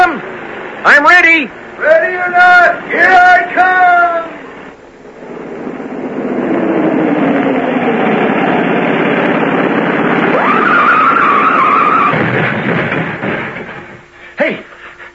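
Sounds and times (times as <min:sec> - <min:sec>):
speech: 0:00.8 - 0:04.4
old car engine roaring on a hill turn: 0:04.3 - 0:14.3
old car tires skidding on a hill turn: 0:05.0 - 0:14.3
tire squeal: 0:06.0 - 0:14.0.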